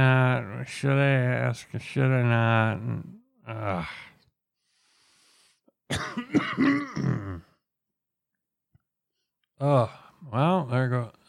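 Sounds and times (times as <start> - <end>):
speech: 0.0 - 4.1, 5.9 - 7.4, 9.6 - 11.2
throat-clearing cough: 5.9 - 7.5.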